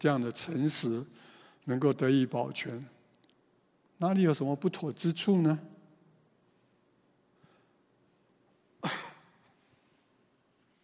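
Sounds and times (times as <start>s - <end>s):
speech: 0.0s - 3.0s, 4.0s - 5.7s
short sharp cough: 8.8s - 9.5s.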